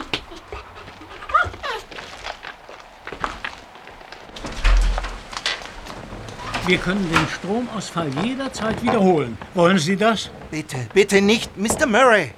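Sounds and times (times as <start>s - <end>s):
dog whimpering softly: 0.0s - 2.1s
dog panting rapidly: 0.0s - 2.8s
dog paws shuffling about: 0.0s - 12.3s
speech: 6.7s - 12.3s.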